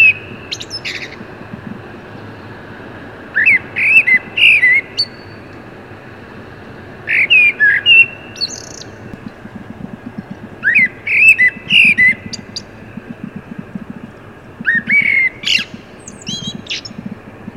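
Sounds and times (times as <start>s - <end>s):
Common blackbird song, Turdus merula: 0.0s - 2.6s, 3.3s - 5.6s, 7.0s - 17.5s
faint low rumble: 0.0s - 2.9s, 8.8s - 17.5s.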